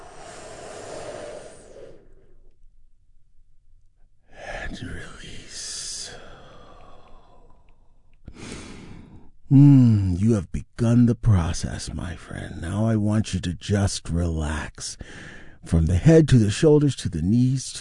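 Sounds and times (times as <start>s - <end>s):
big deep breaths during a guided healing meditation: 0.0s - 2.6s, 5.4s - 10.0s, 15.0s - 15.6s
speech: 4.7s - 5.7s, 9.5s - 17.7s.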